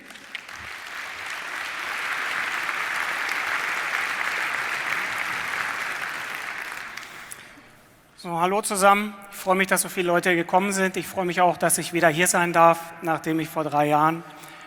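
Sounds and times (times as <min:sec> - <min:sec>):
audience applause: 0:00.0 - 0:07.6
speech: 0:08.2 - 0:14.4.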